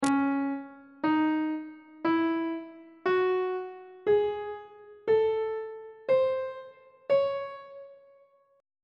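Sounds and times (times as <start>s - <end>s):
D flat harmonic minor scale notes: 0.0s - 8.2s.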